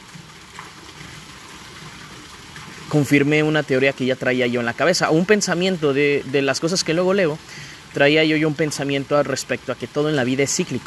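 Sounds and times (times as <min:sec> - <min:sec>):
water flowing in a fountain: 0:00.0 - 0:10.8
speech: 0:02.9 - 0:10.8.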